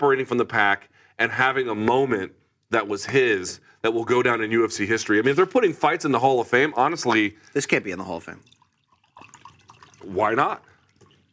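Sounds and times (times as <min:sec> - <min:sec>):
speech: 0:00.0 - 0:08.6, 0:10.0 - 0:10.7
water poured into an empty coffee cup: 0:06.5 - 0:11.3.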